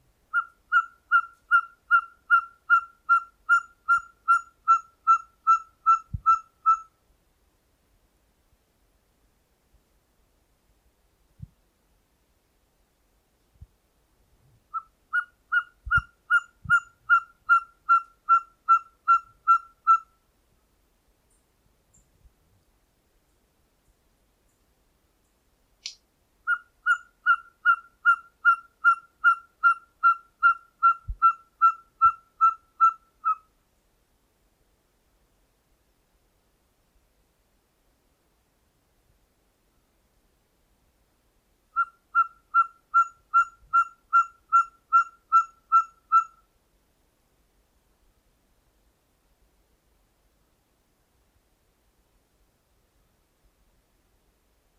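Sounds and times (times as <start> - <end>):
ferruginous pygmy owl calling: 0.3 - 6.9, 14.7 - 20.2, 26.4 - 33.5, 41.7 - 46.4.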